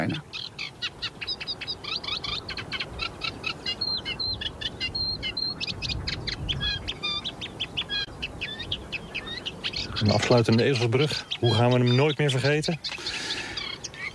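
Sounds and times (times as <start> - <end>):
Eurasian reed warbler song in a reedbed: 0.0 - 14.1
speech: 10.0 - 13.0.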